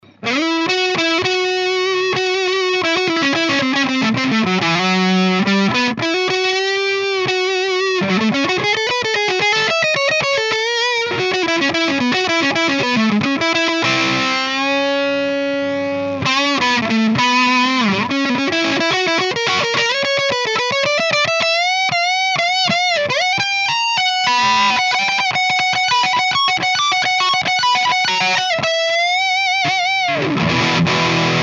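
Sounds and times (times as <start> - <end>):
distorted electric guitar solo on neck humbucker pickup: 0.1 - 31.4.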